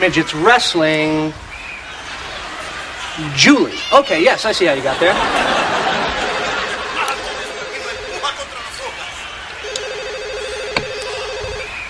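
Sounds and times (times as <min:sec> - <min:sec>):
speech: 0:00.0 - 0:01.5, 0:03.2 - 0:05.6
murmur of chatter: 0:00.0 - 0:11.8
laughter: 0:01.9 - 0:03.6, 0:04.5 - 0:09.0
telephone ringing unanswered with electronic trilling: 0:06.3 - 0:08.5, 0:09.6 - 0:11.7.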